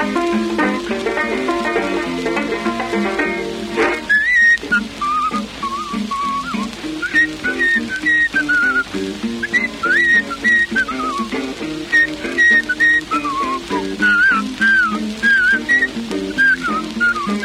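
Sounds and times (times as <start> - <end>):
banjo accompaniment: 0.0 - 17.4
person whistling a ragtime melody: 4.0 - 11.3, 11.9 - 17.4.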